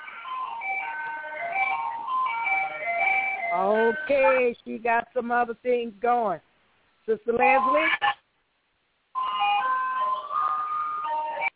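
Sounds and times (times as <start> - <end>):
tinny electronic ice cream truck jingle: 0.0 - 4.5, 7.5 - 7.9, 9.2 - 11.5
speech: 3.6 - 6.5, 7.1 - 8.0.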